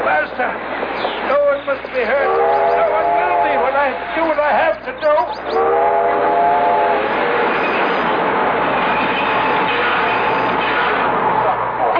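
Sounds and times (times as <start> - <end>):
train rumbling along the rails: 0.0 - 11.9
speech: 0.4 - 0.8, 2.0 - 2.4
horn-like harmonic tone: 2.2 - 3.7, 5.5 - 7.6.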